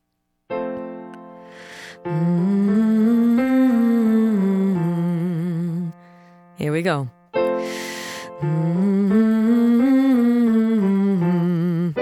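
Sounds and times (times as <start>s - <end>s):
speech: 2.0s - 2.6s, 6.6s - 7.8s, 8.4s - 9.1s
person humming a nasal N sound up and down a five-note scale: 2.0s - 6.0s, 8.4s - 12.0s.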